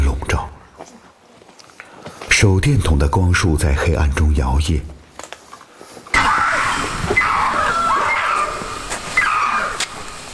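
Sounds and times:
speech: 0:02.4 - 0:05.0
masked palm civet screaming at night: 0:06.1 - 0:10.3.

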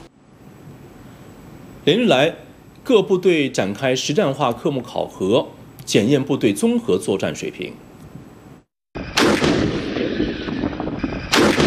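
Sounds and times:
speech: 0:01.8 - 0:07.9
tank guns firing during a live-fire exercise in the Gobi desert: 0:09.0 - 0:11.6.

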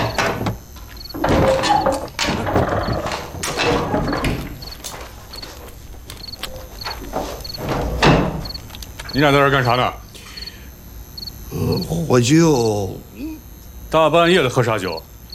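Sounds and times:
wooden door opening with knocks, rattles and scraping clatters: 0:00.0 - 0:05.5, 0:06.5 - 0:08.6
shuffling footsteps: 0:00.0 - 0:09.6
speech: 0:09.2 - 0:10.0, 0:11.7 - 0:13.1, 0:13.9 - 0:15.1.

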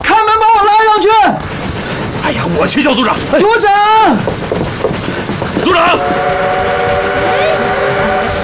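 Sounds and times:
rushing hiss of steam from a steam train: 0:00.5 - 0:08.4
speech: 0:02.7 - 0:04.6, 0:05.7 - 0:06.6
steam train whistle blowing: 0:05.6 - 0:08.4.

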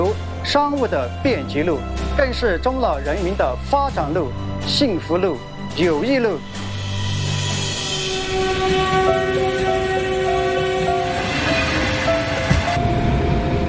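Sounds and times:
speech: 0:00.1 - 0:06.6
train on a cross-border railway running through a 9.59-kilometre tunnel: 0:06.4 - 0:13.6
clattering train wheels: 0:07.5 - 0:13.6.

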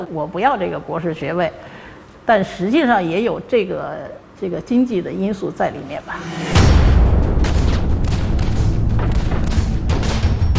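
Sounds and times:
speech: 0:00.0 - 0:07.0
battle noise with booming blasts: 0:06.3 - 0:10.5.

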